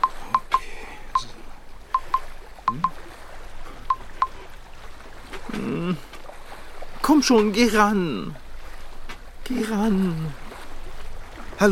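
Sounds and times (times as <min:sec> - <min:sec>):
phone keypad beeps dialing a number on a houseboat: 0:00.0 - 0:00.6, 0:02.0 - 0:03.0, 0:03.9 - 0:04.4
speech: 0:07.2 - 0:08.4, 0:09.5 - 0:10.4.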